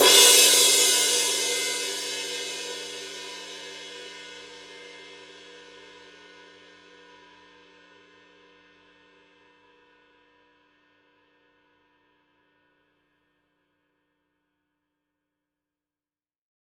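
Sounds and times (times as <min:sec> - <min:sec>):
heavy ride cymbal edge hit: 0:00.0 - 0:05.2.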